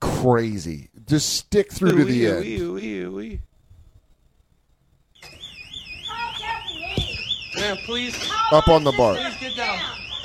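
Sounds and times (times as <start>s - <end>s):
speech: 0.2s - 3.5s, 7.6s - 10.0s
indistinct voices: 1.6s - 3.5s, 6.0s - 10.2s
electronic alarm wailing in a played video: 5.2s - 10.2s.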